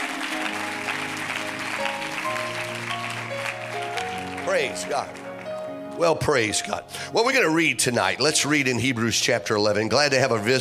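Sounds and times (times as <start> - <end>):
audience clapping hands: 0.0 - 6.5
speech: 4.5 - 5.2, 6.0 - 10.6.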